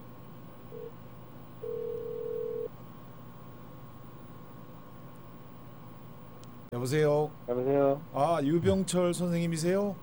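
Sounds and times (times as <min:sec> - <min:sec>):
telephone line tones as a call is put through on a radio call-in: 0:00.7 - 0:01.0, 0:01.6 - 0:02.7
speech: 0:06.7 - 0:10.0.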